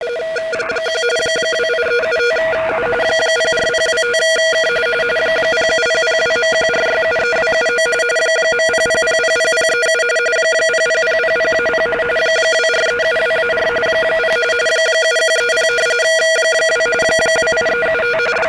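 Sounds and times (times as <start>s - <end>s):
RTTY radioteletype signal on 3596MHz: 0.0s - 18.4s.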